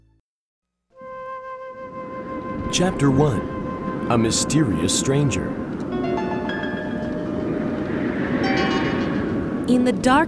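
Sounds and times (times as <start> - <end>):
thin metallic squealing tones: 2.0 - 9.7
train rumbling: 2.2 - 10.2
speech: 2.7 - 3.5, 4.1 - 5.6, 9.7 - 10.2
train wheels rattling: 5.6 - 10.2.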